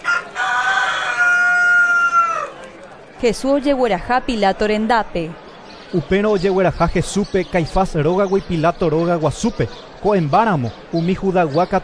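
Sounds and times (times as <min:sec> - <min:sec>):
rooster crowing: 0:00.0 - 0:02.6
speech: 0:03.2 - 0:11.8.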